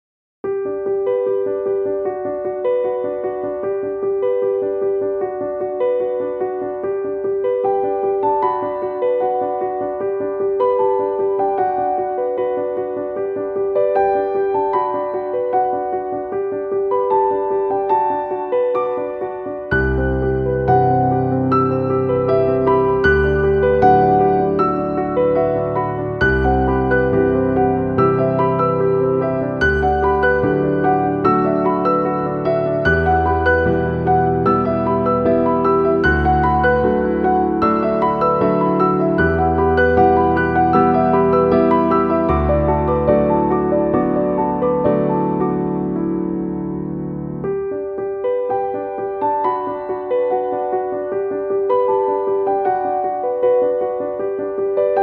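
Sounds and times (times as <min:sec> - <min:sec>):
piano piece: 0:00.4 - 0:55.0.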